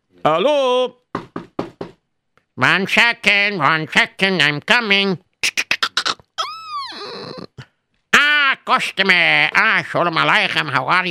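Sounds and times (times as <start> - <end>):
speech: 0.2 - 1.0, 2.6 - 5.7, 8.7 - 11.1
firm knocking on a door: 1.1 - 2.1.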